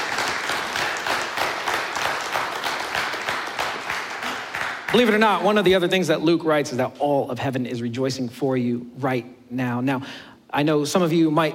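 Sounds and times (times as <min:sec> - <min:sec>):
large audience applause: 0:00.0 - 0:05.4
speech: 0:04.9 - 0:11.5.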